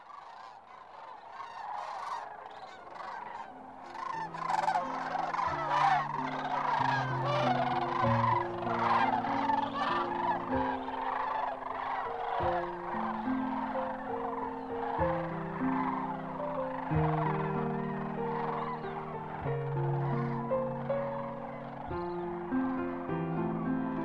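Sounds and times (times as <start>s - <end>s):
large flock of cranes calling while landing at the Platte River: 0.0s - 24.0s.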